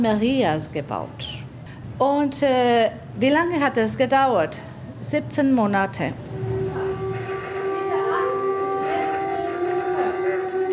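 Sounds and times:
speech: 0.0s - 1.4s, 2.0s - 6.4s
air-raid siren wailing: 6.3s - 10.7s.

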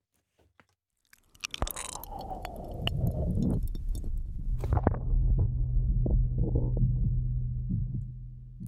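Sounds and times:
dense low whooshing rumble inside womb: 2.3s - 8.6s
muffled heartbeat heard inside womb: 2.9s - 8.6s.

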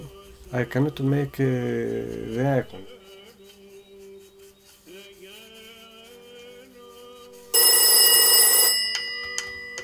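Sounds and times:
speech: 0.5s - 2.9s
old cream-coloured rotary dial telephone bell ringing: 7.5s - 9.8s.

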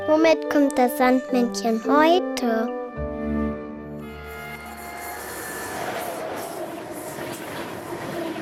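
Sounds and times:
speech: 0.2s - 2.7s
train running on rails: 4.4s - 8.4s.

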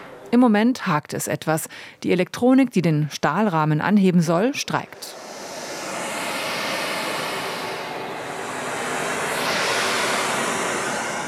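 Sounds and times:
speech: 0.3s - 5.3s
sound system calibration rushing noise in a hall: 4.2s - 11.2s.

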